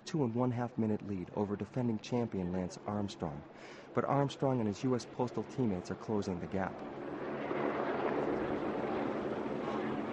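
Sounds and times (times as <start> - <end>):
speech: 0.1 - 7.0
helicopter engines roaring over a valley: 2.7 - 10.1.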